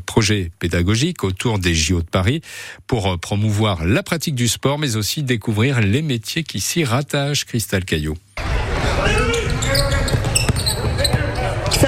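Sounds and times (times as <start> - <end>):
speech: 0.2 - 9.9
murmur of voices and crowd noise in a gym: 8.4 - 11.8
sneaker squeaks on a gym court: 9.2 - 11.8
basketballs bouncing on a hard court in a gym: 9.4 - 11.8.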